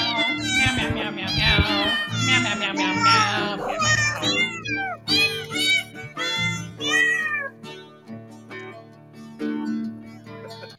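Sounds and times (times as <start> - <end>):
cats meowing a Christmas carol melody: 0.0 - 8.0.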